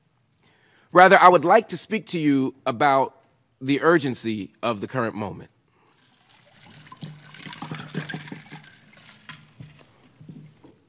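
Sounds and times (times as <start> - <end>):
speech: 0.9 - 5.5
person sipping and gulping water: 5.7 - 10.8
water pouring into a container: 5.8 - 10.8.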